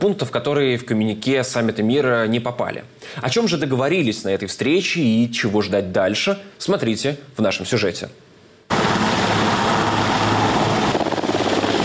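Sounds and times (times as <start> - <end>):
speech: 0.0 - 8.8
helicopter roaring overhead with rapid rotor chop: 8.7 - 11.8.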